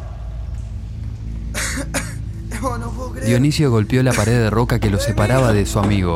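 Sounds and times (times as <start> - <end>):
man coughing harshly, choking on dust by a rock wall: 1.5 - 2.3, 4.1 - 5.5
speech: 1.8 - 6.1.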